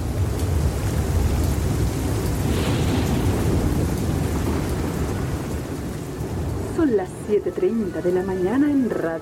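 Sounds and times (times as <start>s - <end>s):
deep rolling rumble of thunder: 0.0s - 7.6s
heavy rain pouring down: 0.0s - 9.1s
speech: 6.9s - 9.1s.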